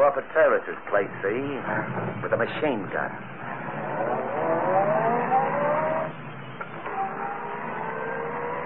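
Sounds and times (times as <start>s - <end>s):
speech: 0.1s - 3.4s
car engine starting and revving: 3.2s - 8.6s.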